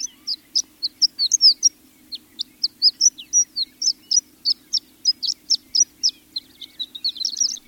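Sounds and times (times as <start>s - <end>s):
horned lark singing high-pitched tinkling song: 0.0s - 7.6s.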